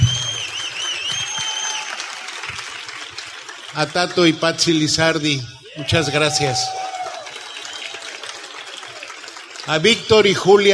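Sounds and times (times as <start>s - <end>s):
shrill whistles from audience: 0.0s - 2.2s, 5.7s - 9.1s
audience clapping: 0.0s - 10.7s
speech: 3.8s - 6.8s, 9.7s - 10.7s.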